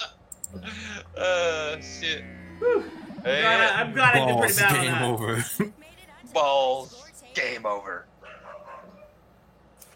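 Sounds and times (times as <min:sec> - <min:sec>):
speech: 0:00.5 - 0:08.1
dog barking: 0:08.2 - 0:09.2.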